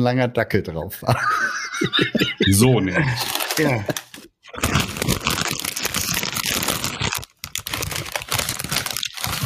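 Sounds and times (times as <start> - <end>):
speech: 0.0 - 4.0
laughter: 1.1 - 4.1
plastic chip bag crinkling: 3.1 - 9.4.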